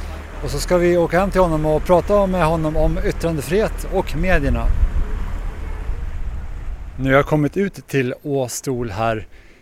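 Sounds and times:
wind buffeting the microphone: 0:00.0 - 0:07.9
sea waves washing: 0:00.0 - 0:08.1
ferry engine rumble under way to Åstol: 0:00.0 - 0:09.6
speech: 0:00.4 - 0:04.8, 0:07.0 - 0:09.4.

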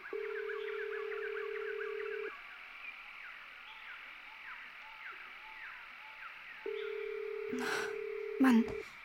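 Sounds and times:
birds chirping softly outdoors: 0:00.0 - 0:09.0
phone line ringback tone: 0:00.1 - 0:02.3, 0:06.7 - 0:08.8
speech: 0:07.5 - 0:09.0.

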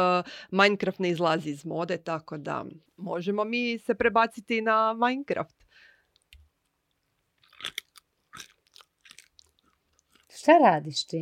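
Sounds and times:
speech: 0:00.0 - 0:05.6, 0:10.4 - 0:11.2
person chewing crunchy snack food: 0:06.9 - 0:10.4.

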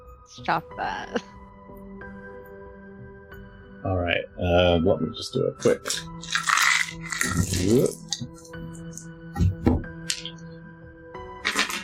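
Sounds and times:
speech: 0:00.3 - 0:01.4, 0:03.8 - 0:06.3, 0:06.9 - 0:08.4
pile of dice clattering across a hard surface: 0:05.6 - 0:08.3, 0:10.1 - 0:10.4, 0:11.4 - 0:11.8.

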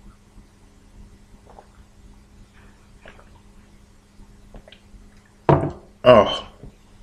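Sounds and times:
low hum: 0:00.0 - 0:07.0
slurping gulp of water: 0:01.4 - 0:01.8
person sipping water: 0:01.4 - 0:01.9, 0:02.6 - 0:03.5
speech: 0:06.1 - 0:06.5.

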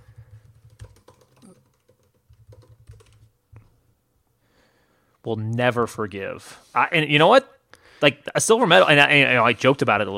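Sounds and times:
typing on a computer keyboard: 0:00.0 - 0:03.3
speech: 0:05.2 - 0:10.1.

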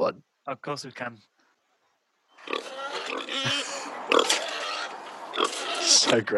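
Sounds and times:
speech: 0:00.1 - 0:01.4, 0:05.4 - 0:06.3
pig on a farm grunting and snorting: 0:02.4 - 0:06.3.

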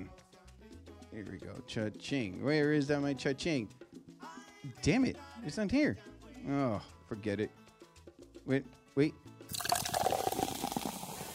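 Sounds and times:
speech: 0:01.1 - 0:03.9, 0:04.6 - 0:07.6, 0:08.5 - 0:09.3
champagne pouring into a glass: 0:09.5 - 0:11.3.

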